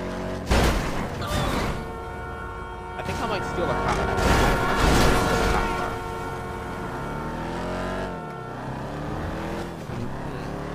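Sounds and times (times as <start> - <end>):
video game car engine drone during a drag race: 0.0 - 10.7
video game cars colliding during a drag race: 0.3 - 8.3
speech: 3.6 - 4.2.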